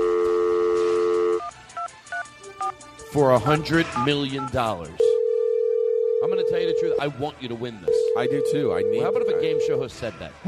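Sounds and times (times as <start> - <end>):
steady phone dial tone: 0.0 - 2.8, 5.0 - 7.0, 7.9 - 9.8
speech: 3.1 - 5.1, 6.5 - 10.4.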